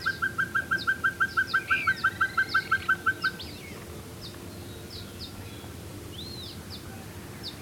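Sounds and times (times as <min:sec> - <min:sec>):
Pacific pygmy owl tooting: 0:00.0 - 0:03.7
faint thin high bird calls: 0:00.0 - 0:07.6.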